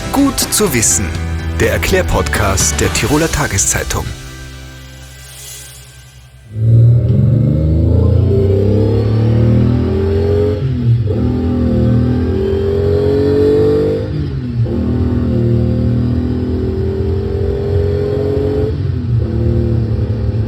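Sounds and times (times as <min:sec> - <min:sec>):
speech: 0:00.2 - 0:04.2
car engine revving hard under heavy acceleration: 0:00.8 - 0:20.4.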